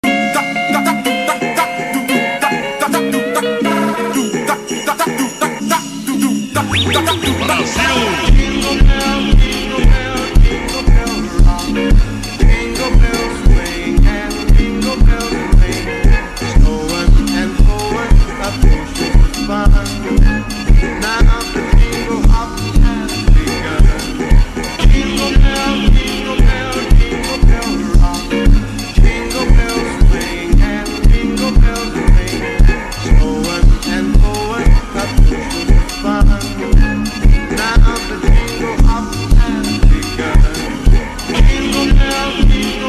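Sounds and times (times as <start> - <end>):
slowed funk version of a Christmas song: 0.0 - 42.8.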